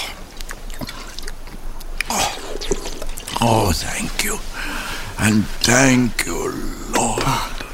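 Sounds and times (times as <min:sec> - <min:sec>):
water gurgling and dripping: 0:00.0 - 0:03.9
water pouring or swallowing: 0:02.0 - 0:03.7
water sloshing and splashing in a canteen: 0:02.2 - 0:03.6
speech: 0:03.4 - 0:04.6, 0:05.2 - 0:07.5.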